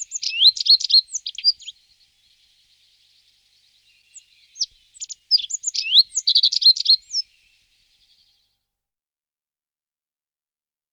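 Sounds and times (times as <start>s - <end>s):
common reed bunting song: 0.0s - 8.4s.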